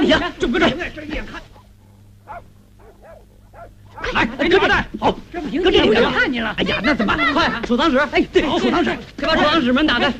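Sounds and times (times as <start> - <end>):
speech: 0.1 - 1.5, 4.0 - 10.1
steady low hum: 1.4 - 4.4
dog yelping and whimpering during a stage comedy scene: 2.3 - 4.2
laughter: 5.7 - 7.7.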